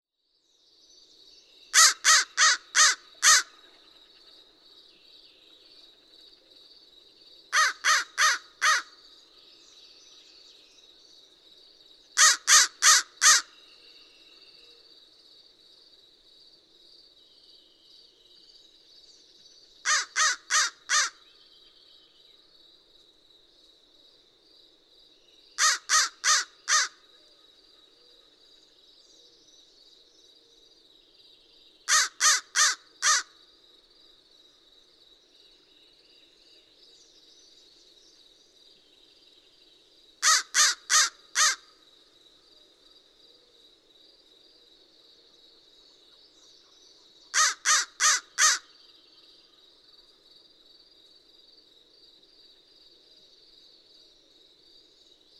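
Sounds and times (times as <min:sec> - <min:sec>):
American crow cawing: 0:01.8 - 0:03.6, 0:07.6 - 0:09.0, 0:12.2 - 0:13.5, 0:19.9 - 0:21.2, 0:25.6 - 0:27.0, 0:31.9 - 0:33.3, 0:40.2 - 0:41.7, 0:47.3 - 0:48.7.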